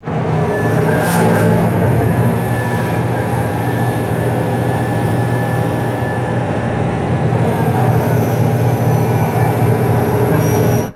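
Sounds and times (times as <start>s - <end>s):
hydraulic motor whine in short bursts: 0.0s - 10.9s.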